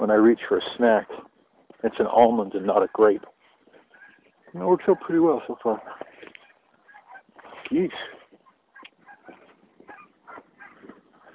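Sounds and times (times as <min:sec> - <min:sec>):
speech: 0:00.0 - 0:03.4, 0:04.5 - 0:06.0, 0:07.7 - 0:08.2
geese honking outdoors: 0:03.8 - 0:05.8, 0:06.4 - 0:07.5, 0:08.4 - 0:11.3.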